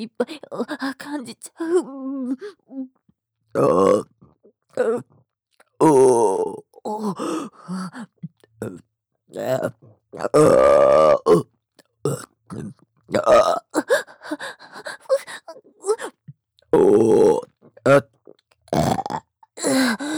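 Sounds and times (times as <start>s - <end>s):
speech: 0.0s - 3.0s, 3.6s - 4.1s, 4.8s - 5.1s, 5.8s - 16.1s, 16.7s - 20.1s
loud burps: 3.6s - 4.2s, 10.2s - 11.5s, 12.1s - 13.7s, 16.8s - 19.8s.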